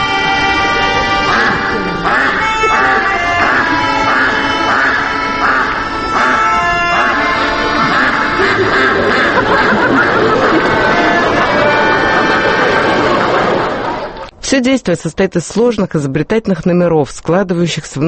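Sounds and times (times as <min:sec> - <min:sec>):
performing circus geese honking and cackling: 0:00.0 - 0:14.3
speech: 0:14.6 - 0:18.0.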